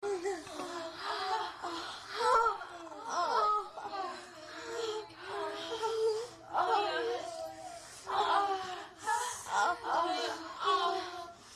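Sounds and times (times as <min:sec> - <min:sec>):
people moaning during sex: 0:00.0 - 0:11.5.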